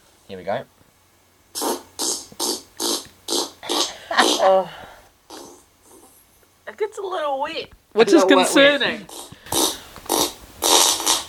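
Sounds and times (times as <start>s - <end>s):
speech: 0.3s - 0.8s, 4.4s - 4.9s, 6.8s - 9.2s
short breathy farts with a squeaky wet fart: 1.5s - 4.7s, 5.3s - 6.2s, 9.0s - 11.2s.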